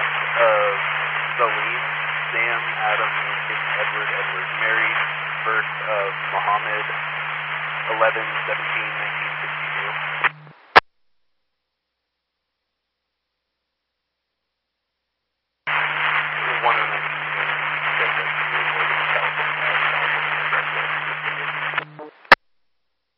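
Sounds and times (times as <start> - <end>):
faint garbled voice over radio transmission: 0.0 - 7.2, 7.9 - 10.3, 15.7 - 22.1
loud steady radio static hiss: 0.0 - 10.8, 15.7 - 22.4
speech: 1.4 - 7.0, 7.9 - 10.2.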